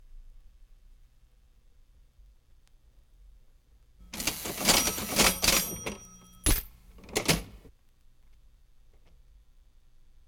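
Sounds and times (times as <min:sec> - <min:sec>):
old crank cash register: 0:04.0 - 0:07.7.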